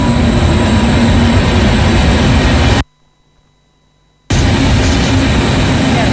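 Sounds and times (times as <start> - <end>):
train departing from station: 0.0 - 2.8, 4.3 - 6.1
thin high whine of a departing train: 0.0 - 6.1.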